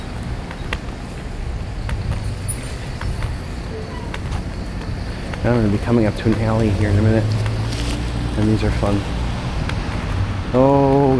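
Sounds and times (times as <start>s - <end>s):
lunchtime street traffic rumbling: 0.0s - 11.1s
speech: 5.4s - 7.5s, 8.4s - 9.2s, 10.5s - 11.1s.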